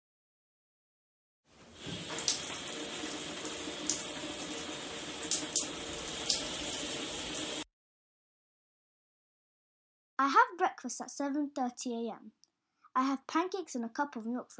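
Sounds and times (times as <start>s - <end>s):
shower water running: 1.5s - 7.7s
speech: 10.2s - 12.4s, 13.0s - 14.5s.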